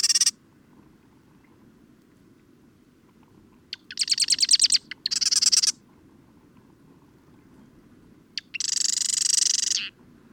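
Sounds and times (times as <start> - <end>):
bird song with high sharp chirped notes and dense rapid trill: 0.0 - 0.3, 3.7 - 5.8, 8.4 - 9.9.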